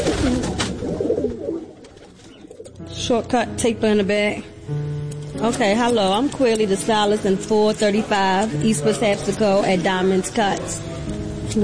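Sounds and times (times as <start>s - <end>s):
pigeons cooing in a yard: 0.0s - 2.8s
speech: 3.1s - 4.8s, 5.4s - 10.9s, 11.5s - 11.6s.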